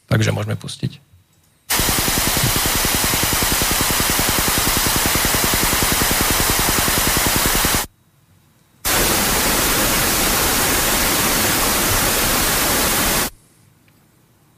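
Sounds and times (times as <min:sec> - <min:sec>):
speech: 0:00.1 - 0:01.0
steady broadband hiss of digital TV multiplex signal received over radio: 0:01.6 - 0:14.5
buzzy rapidly pulsing digital TV multiplex signal received over radio: 0:01.7 - 0:07.9, 0:08.9 - 0:13.4.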